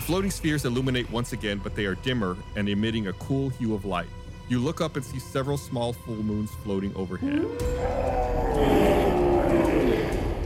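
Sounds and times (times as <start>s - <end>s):
speech: 0.1s - 9.0s
wolf howling: 7.2s - 10.4s
bear roaring: 7.3s - 10.4s.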